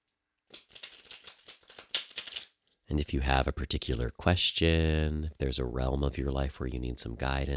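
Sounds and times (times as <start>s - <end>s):
tarot cards being shuffled: 0.5s - 2.6s
speech: 2.9s - 7.5s.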